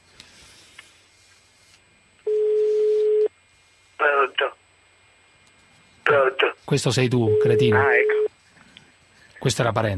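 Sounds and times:
telephone ringing tone over a call line: 2.3s - 3.3s, 7.2s - 8.3s
speech: 6.6s - 8.2s, 9.4s - 9.9s.

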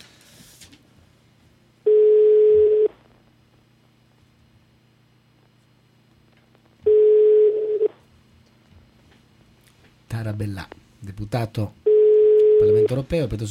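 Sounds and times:
telephone ringing on a radio show's phone line: 1.9s - 2.9s, 6.8s - 7.9s, 11.9s - 13.0s
speech: 10.4s - 11.8s, 12.6s - 13.4s.

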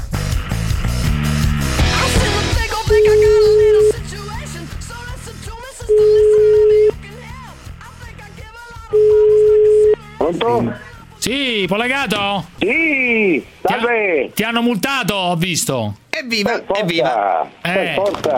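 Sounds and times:
loud music: 0.0s - 11.4s
outgoing telephone call ringing tones: 2.9s - 4.0s, 5.9s - 7.0s, 8.9s - 10.0s
speech: 10.5s - 18.3s.

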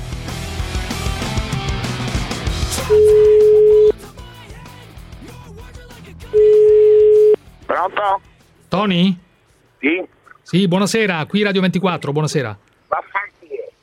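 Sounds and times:
telephone line tone while placing a call: 2.8s - 3.9s, 6.4s - 7.4s
speech: 2.9s - 3.2s, 7.8s - 9.2s, 9.8s - 13.1s.

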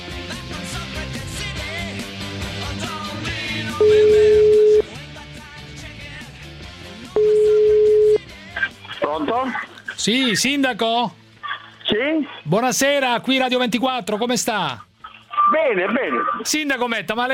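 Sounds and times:
speech: 3.6s - 4.1s, 9.4s - 11.2s, 11.9s - 14.9s, 15.5s - 17.3s
ringback tone of an outgoing telephone call: 3.8s - 4.9s, 7.2s - 8.2s.

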